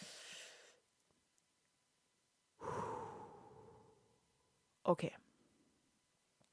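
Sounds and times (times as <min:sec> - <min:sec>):
deep breath taken to calm down: 0:00.0 - 0:00.8, 0:02.6 - 0:04.3
speech: 0:04.9 - 0:05.2.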